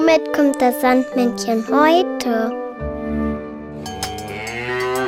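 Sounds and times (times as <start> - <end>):
speech: 0.1 - 2.6
cow mooing: 4.1 - 5.0.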